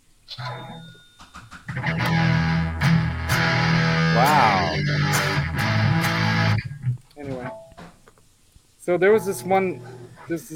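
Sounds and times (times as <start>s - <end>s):
speech: 0.3s - 1.0s, 8.9s - 10.5s
electric guitar played through a distortion pedal: 1.7s - 7.6s.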